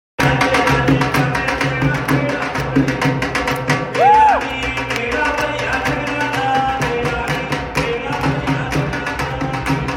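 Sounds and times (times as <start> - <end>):
dhol drumming: 0.2 - 9.9.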